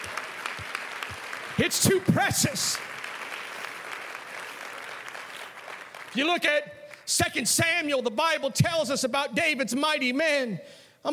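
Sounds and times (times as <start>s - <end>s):
church congregation clapping hands during a service: 0.0s - 7.4s
speech: 1.6s - 2.9s, 6.2s - 11.1s.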